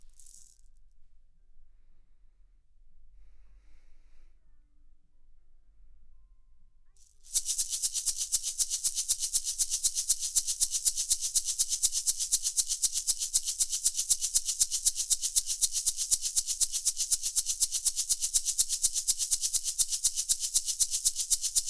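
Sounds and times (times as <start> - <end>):
shaker: 0.0 - 1.0, 7.0 - 21.6.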